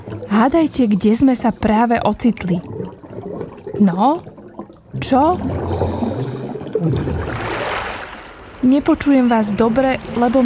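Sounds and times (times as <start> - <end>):
low underwater rumbling and gurgling while a person is under water: 0.0 - 10.4
speech: 0.2 - 2.8, 3.8 - 4.3, 5.0 - 5.9, 6.8 - 7.5, 8.6 - 10.4
open watery hiss: 0.4 - 1.9, 5.5 - 6.7
splash and wash as a woman surfaces from the water: 7.2 - 8.5.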